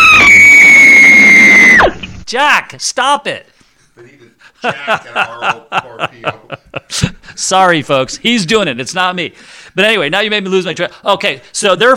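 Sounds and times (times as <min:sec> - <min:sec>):
woman screaming: 0:00.0 - 0:01.9
speech: 0:02.3 - 0:11.9
laughter: 0:04.4 - 0:07.4.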